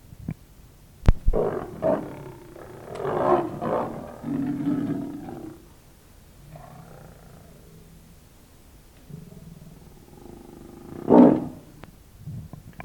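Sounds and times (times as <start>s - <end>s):
snow leopard low rumbling growls: 1.3s - 5.7s, 6.5s - 8.0s, 9.0s - 11.8s.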